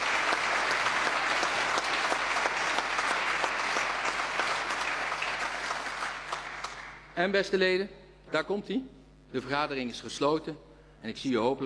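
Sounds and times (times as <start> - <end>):
large audience of members clapping at the close of a meeting: 0.0 - 7.1
speech: 7.2 - 11.6.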